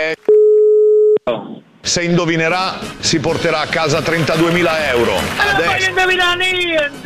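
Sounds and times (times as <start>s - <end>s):
telephone tone after a caller hangs up: 0.2s - 1.2s
speech: 1.9s - 7.0s.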